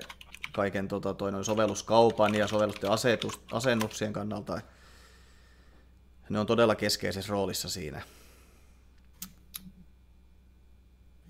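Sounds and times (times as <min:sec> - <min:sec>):
computer keyboard clicks: 0:00.0 - 0:00.6, 0:01.4 - 0:04.0
low steady hum: 0:00.0 - 0:11.2
speech: 0:00.6 - 0:04.8, 0:06.3 - 0:08.2.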